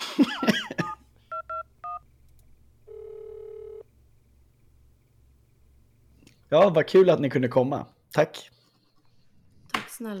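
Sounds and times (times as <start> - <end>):
steady flat tone on an old Bakelite telephone: 1.3 - 2.0, 2.9 - 3.8
speech: 6.5 - 8.6, 10.0 - 10.1.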